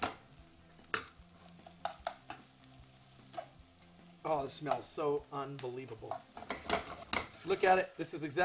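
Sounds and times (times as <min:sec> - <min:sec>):
faint sizzle of mayonnaise in a hot pan on low heat: 0:00.0 - 0:08.4
speech: 0:04.3 - 0:06.5, 0:07.4 - 0:08.4
utensil scraping a hot pan while stirring mayonnaise: 0:06.0 - 0:07.8.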